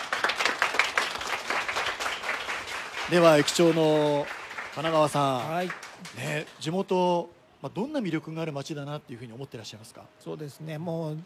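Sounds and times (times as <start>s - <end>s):
studio audience applause: 0.0s - 6.6s
speech: 3.1s - 11.2s.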